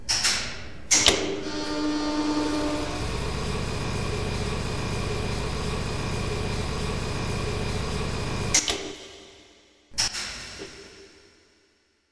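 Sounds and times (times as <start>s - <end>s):
elevator: 0.9s - 8.8s.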